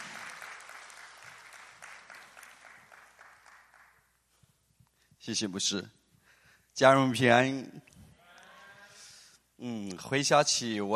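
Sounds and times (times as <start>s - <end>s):
audience applause: 0.0s - 4.0s
speech: 5.2s - 6.0s, 6.8s - 7.8s, 9.6s - 10.9s.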